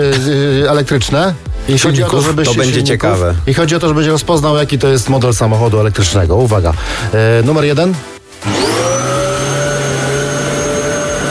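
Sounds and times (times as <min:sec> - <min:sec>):
speech: 0:00.0 - 0:08.6
vacuum cleaner motor whine: 0:08.4 - 0:11.2.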